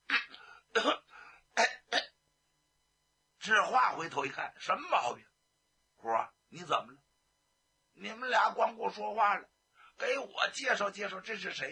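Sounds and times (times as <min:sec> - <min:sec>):
performer imitating a feigned cough: 0:00.1 - 0:02.2
speech: 0:00.8 - 0:01.0, 0:04.0 - 0:05.3, 0:06.0 - 0:07.0, 0:08.0 - 0:11.7.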